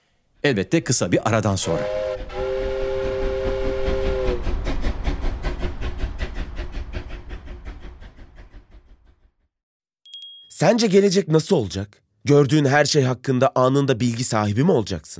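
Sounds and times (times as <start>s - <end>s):
speech: 0.4s - 2.4s, 10.6s - 15.1s
steam train whistle: 1.6s - 4.6s
steam train chugging past with rapid rhythmic puffing: 1.8s - 9.4s
brief bright chime: 10.1s - 10.6s.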